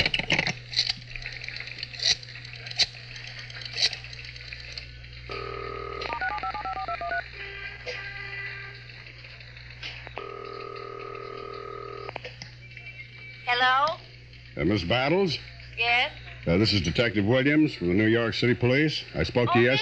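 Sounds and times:
low constant hum: 0:00.0 - 0:19.8
steady telephone tone: 0:05.3 - 0:07.3, 0:10.2 - 0:12.2
touch-tone beeps of a telephone number being dialed: 0:05.5 - 0:07.2
speech: 0:14.6 - 0:19.8.

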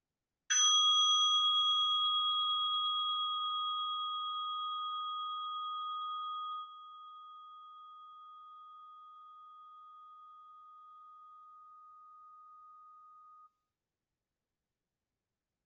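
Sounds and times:
meditation bell lightly tapped, resonating: 0:00.5 - 0:11.6.

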